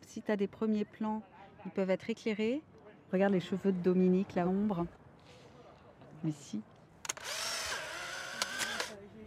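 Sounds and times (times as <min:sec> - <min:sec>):
speech: 0:00.2 - 0:05.0, 0:06.2 - 0:06.7
Polaroid instant camera ejecting a photo: 0:07.1 - 0:09.0.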